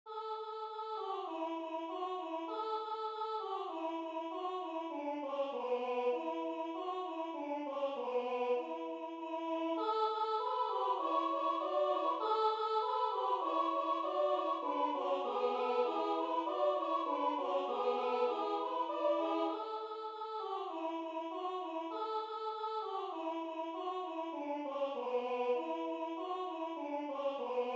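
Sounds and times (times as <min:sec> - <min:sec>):
people singing colinde carols in Ardeal: 0:00.1 - 0:27.7.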